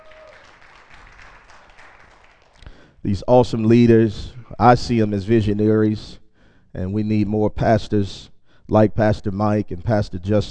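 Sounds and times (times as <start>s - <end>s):
large church audience applauding: 0.0s - 2.7s
speech: 3.0s - 6.2s, 6.8s - 10.4s.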